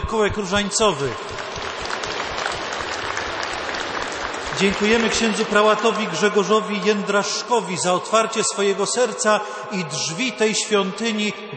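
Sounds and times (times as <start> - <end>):
audience applauding at a community gathering in a church: 0.0 - 6.2
speech: 0.1 - 1.7, 4.6 - 11.5.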